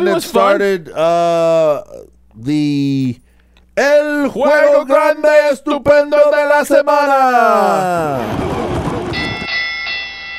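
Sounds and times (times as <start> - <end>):
speech: 0.0 - 3.2, 3.8 - 8.8
bright ringing bell strikes: 9.1 - 10.3.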